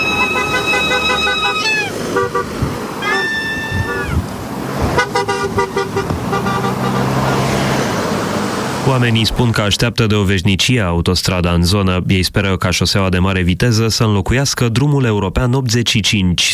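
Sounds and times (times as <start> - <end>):
vuvuzela toots: 0.0 - 4.3, 5.0 - 7.5
car horns honking at a new highway section opening: 0.0 - 9.1
traffic rumble: 0.0 - 16.5
speech: 9.0 - 16.5.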